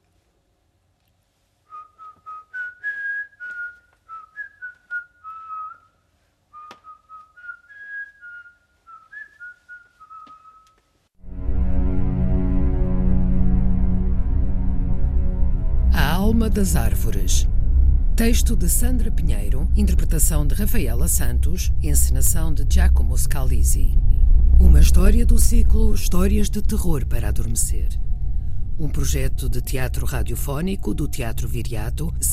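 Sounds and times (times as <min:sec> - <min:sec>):
young man whistling a lilting melody while walking away at night: 0:01.7 - 0:10.8
loud dense sustained sound: 0:11.2 - 0:32.3
speech: 0:16.4 - 0:17.6, 0:18.2 - 0:24.0, 0:24.6 - 0:28.0, 0:28.8 - 0:32.3.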